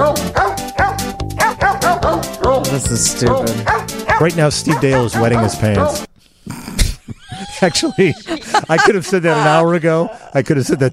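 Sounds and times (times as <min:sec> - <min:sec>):
recorded dog barks pitched into a bouncy Christmas tune: 0:00.0 - 0:02.7, 0:03.4 - 0:06.1
speech: 0:02.9 - 0:06.1, 0:07.6 - 0:10.9
laughter: 0:06.8 - 0:10.9.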